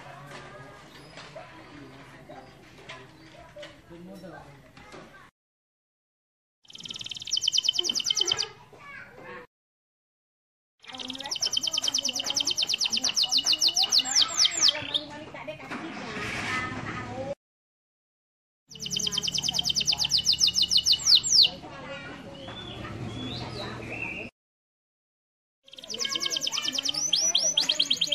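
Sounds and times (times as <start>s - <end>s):
canary song with rapid high trilling: 6.6s - 9.1s, 10.8s - 15.1s, 18.7s - 24.3s, 25.7s - 28.1s
rough noisy sounds: 15.2s - 17.4s.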